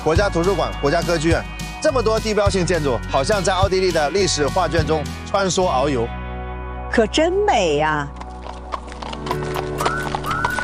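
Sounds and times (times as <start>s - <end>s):
speech: 0.0s - 6.2s, 6.9s - 8.2s
carriage horse hooves clip-clopping during a sightseeing ride in Austria: 7.9s - 10.6s.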